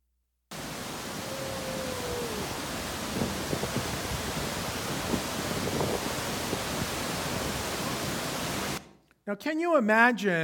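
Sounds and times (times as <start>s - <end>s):
powerful waterfall roaring: 0.5s - 8.8s
speech: 9.3s - 10.4s.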